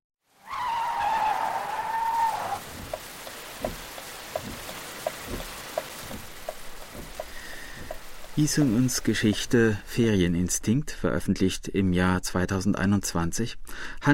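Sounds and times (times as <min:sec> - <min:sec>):
heavy rain hissing: 0:00.3 - 0:10.2
car tires screeching in a skid in heavy rain: 0:00.4 - 0:03.0
sparse rain drips and taps: 0:02.6 - 0:09.8
speech: 0:08.4 - 0:14.1.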